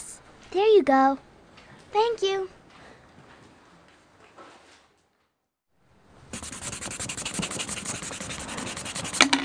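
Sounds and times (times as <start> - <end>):
speech: 0.8 - 1.3, 1.9 - 2.6
eraser rubbing on paper: 6.3 - 9.3.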